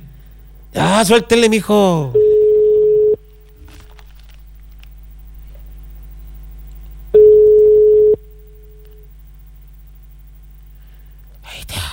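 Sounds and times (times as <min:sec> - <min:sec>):
speech: 0:00.8 - 0:02.2
low hum: 0:02.0 - 0:11.4
telephone ringback tone on an outgoing call: 0:02.2 - 0:03.2, 0:07.2 - 0:08.2.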